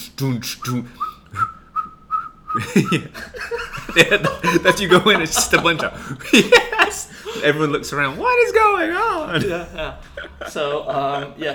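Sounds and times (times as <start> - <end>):
person whistling a tune: 0.0 - 3.2
speech: 0.2 - 1.6, 2.6 - 11.5
chatter: 2.5 - 11.5
burst of laughter: 2.6 - 7.6, 9.1 - 11.5.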